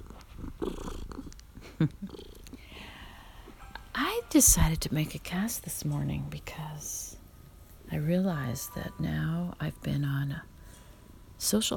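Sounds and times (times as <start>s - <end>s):
cat purring: 0.0s - 7.2s
speech: 1.8s - 2.3s, 4.0s - 7.2s, 7.9s - 10.5s, 11.4s - 11.7s.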